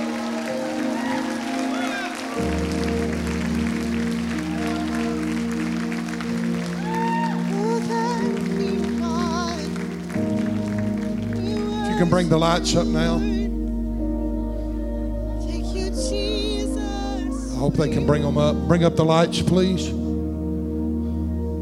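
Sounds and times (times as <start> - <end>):
scattered cheers and voices: 0.0 - 12.2
audience applauding: 0.0 - 13.4
sustained organ-like tones: 0.0 - 21.6
speech: 12.0 - 13.3, 17.6 - 20.0.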